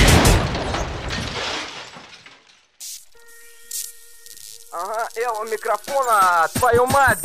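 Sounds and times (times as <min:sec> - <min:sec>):
booming gunshot sound effect: 0:00.0 - 0:01.1
speech: 0:05.1 - 0:07.2.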